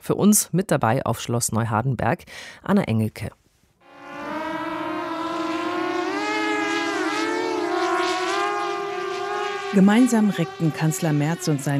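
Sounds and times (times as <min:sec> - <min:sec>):
speech: 0:00.0 - 0:03.4, 0:09.7 - 0:11.7
drone hovering with high-pitched buzzing whine: 0:03.8 - 0:11.7.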